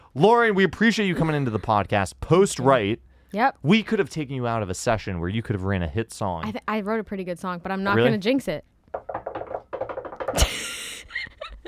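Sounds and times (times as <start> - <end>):
speech: 0.2 - 9.1
knocking on wood: 8.9 - 10.6.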